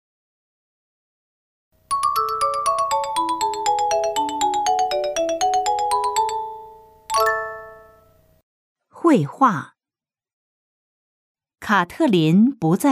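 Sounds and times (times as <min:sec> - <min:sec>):
telephone electronic melodic ringtone at home with an incoming call: 0:01.9 - 0:08.2
speech: 0:09.1 - 0:09.7, 0:11.7 - 0:12.9.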